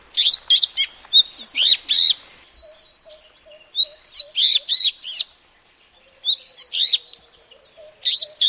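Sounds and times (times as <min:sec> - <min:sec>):
Madagascar magpie-robin song of whistled and buzzy notes: 0:00.1 - 0:05.3, 0:06.1 - 0:08.4.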